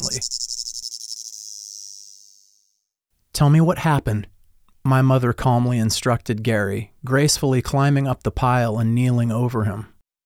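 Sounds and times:
speech: 0.0 - 0.5, 3.4 - 9.9
chorus of cicadas buzzing: 0.0 - 3.0.

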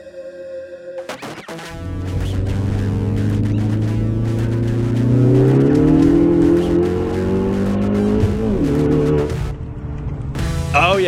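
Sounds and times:
car engine revving and accelerating through the gears: 1.6 - 11.0.

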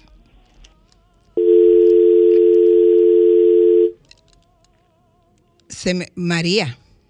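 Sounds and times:
telephone dial tone after dropped call: 1.4 - 4.0
speech: 5.8 - 6.8.

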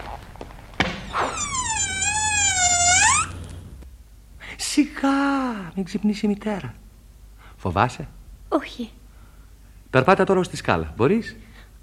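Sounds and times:
door creaking open: 0.7 - 3.8
speech: 5.0 - 6.8, 7.6 - 9.0, 9.9 - 11.5.

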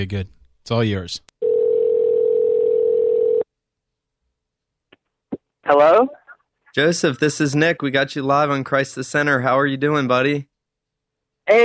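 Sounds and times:
speech: 0.0 - 1.3, 5.7 - 6.2, 6.8 - 10.5
telephone ringback tone on an outgoing call: 1.4 - 3.4.

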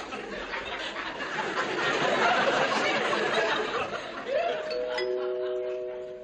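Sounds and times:
audience laughter: 0.0 - 6.2
two-tone doorbell chime: 4.6 - 6.2.

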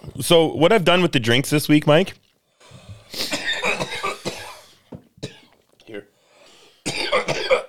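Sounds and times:
speech: 0.1 - 2.2
person coughing after a dab: 3.2 - 5.6, 6.8 - 7.6.

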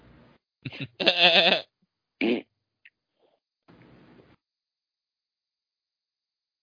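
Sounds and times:
laughter: 0.7 - 1.2
speech: 0.7 - 2.4
loud fart blast and raspy sputtering fart: 2.2 - 2.5.

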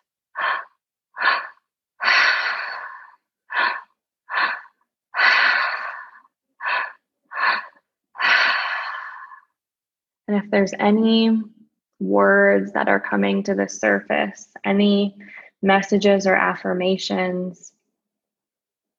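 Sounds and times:
deep breathing during a guided breathwork session: 0.0 - 9.6
speech: 10.3 - 17.8.

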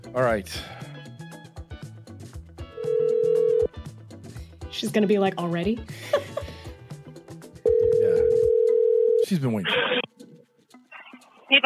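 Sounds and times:
speech: 0.0 - 0.9, 4.8 - 6.4, 9.3 - 10.0
phone call ringing out over speakerphone: 2.8 - 3.7, 7.7 - 9.3.

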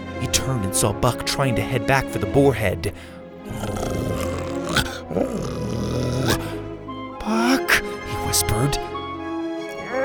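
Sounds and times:
speech: 0.2 - 3.9, 8.3 - 8.9
dog growling and snarling pulling against its leash: 3.4 - 7.8.

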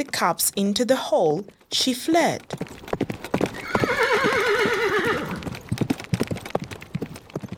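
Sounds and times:
speech: 0.0 - 2.9
horses' galloping hooves: 0.0 - 7.5
horse whinnying: 3.4 - 5.6.

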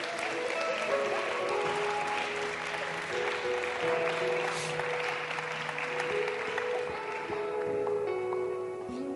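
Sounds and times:
congregation applauding: 0.0 - 9.0.

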